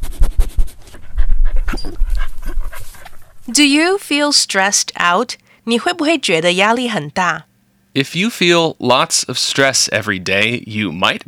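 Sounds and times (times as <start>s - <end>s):
dog panting: 0.8s - 3.5s
speech: 3.5s - 11.2s.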